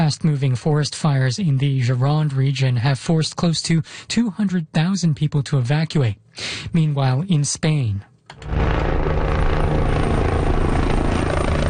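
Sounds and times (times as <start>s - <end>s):
speech: 0.1s - 8.9s
helicopter water-bombing a forest fire near El Tiemblo in central Spain: 8.4s - 11.6s.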